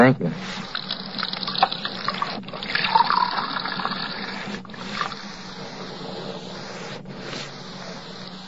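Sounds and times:
speech: 0.0 - 0.7
tap water running into a glass: 1.2 - 4.0.

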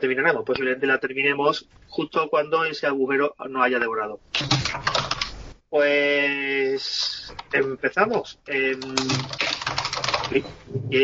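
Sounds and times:
speech: 0.0 - 4.9, 5.7 - 11.0
rapid typing on a computer keyboard: 4.4 - 5.3, 8.7 - 10.4.

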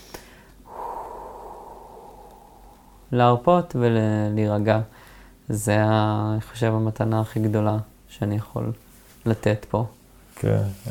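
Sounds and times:
deep breath in through the nose and slowly out through the mouth: 0.0 - 3.2, 4.9 - 5.4
speech: 3.1 - 10.8.

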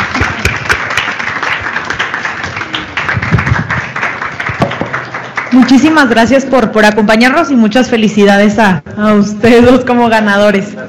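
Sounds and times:
audience applause: 0.0 - 5.9
speech: 5.6 - 10.8.

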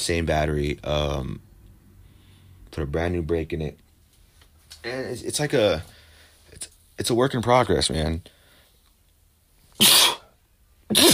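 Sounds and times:
speech: 0.0 - 1.5, 2.7 - 3.8, 4.8 - 8.4, 9.8 - 10.1
person sneezing: 9.8 - 11.1.

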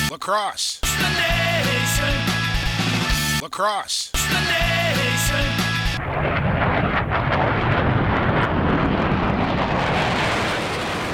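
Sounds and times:
speech: 0.1 - 2.4, 3.4 - 6.3
jet airplane touching down: 6.0 - 11.1.

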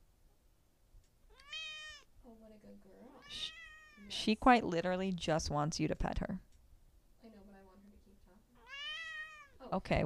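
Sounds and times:
female pet cat meowing: 1.3 - 2.1, 3.2 - 4.1, 8.6 - 9.6
speech: 2.5 - 6.5, 9.7 - 10.0.

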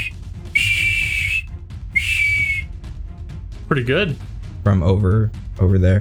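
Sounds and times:
person whistling long high notes: 0.0 - 2.7
speech: 3.7 - 5.9.

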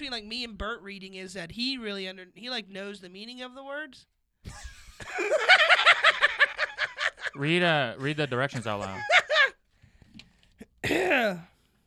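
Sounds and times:
speech: 0.0 - 5.8, 7.4 - 9.2, 10.8 - 11.5
laughter: 4.5 - 7.4, 8.0 - 9.6
heavy throat clearing into a microphone: 10.7 - 11.5.

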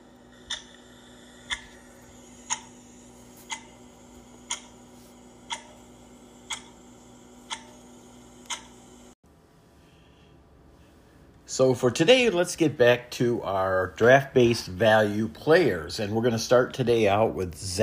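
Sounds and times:
faint low hum: 0.0 - 17.8
clock ticking: 0.3 - 9.0
speech: 11.5 - 17.8.

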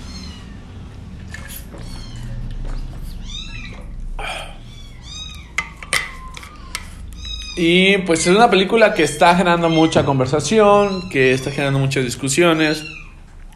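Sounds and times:
newly arrived kittens meowing and crying: 0.0 - 13.5
speech: 7.6 - 13.0.

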